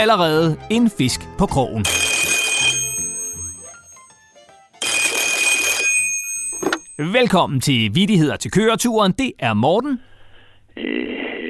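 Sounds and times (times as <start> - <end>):
speech: 0.0 - 2.1, 7.0 - 10.1, 10.8 - 11.3
red flashing hotline telephone trilling electronic ringing: 1.8 - 4.0, 4.8 - 7.1.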